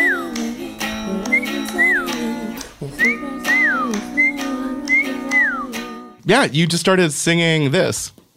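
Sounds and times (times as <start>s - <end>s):
whistled melody: 0.0s - 6.1s
steady sustained instrumental backing: 0.0s - 7.8s
speech: 6.3s - 8.2s.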